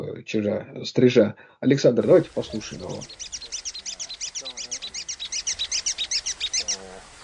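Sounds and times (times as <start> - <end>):
speech: 0.2 - 3.4
swiftlet high chirping echolocation clicks: 2.1 - 6.8.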